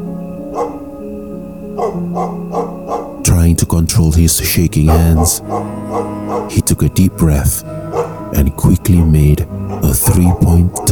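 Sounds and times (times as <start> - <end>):
stray dogs barking: 0.4 - 1.0, 1.8 - 3.3, 4.8 - 6.7, 7.8 - 8.4, 9.6 - 10.8
speech: 0.6 - 0.8, 1.9 - 2.6, 3.4 - 10.8.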